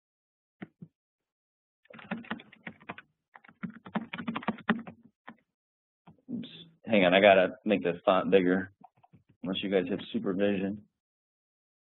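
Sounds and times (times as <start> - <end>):
typing on a computer keyboard: 1.9 - 5.4
speech: 6.9 - 8.8, 9.4 - 10.9.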